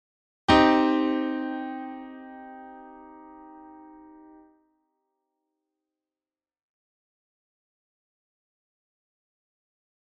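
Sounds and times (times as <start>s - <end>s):
C minor triad chord: 0.5s - 4.5s.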